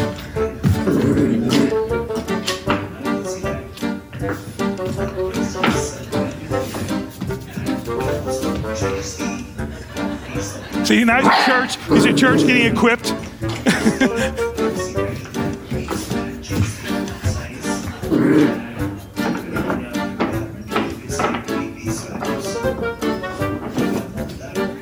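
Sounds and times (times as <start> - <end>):
busy noise: 0.0 - 24.8
laughter: 9.6 - 15.2
speech: 10.9 - 13.2, 14.0 - 14.5
puppy barking: 11.2 - 12.5.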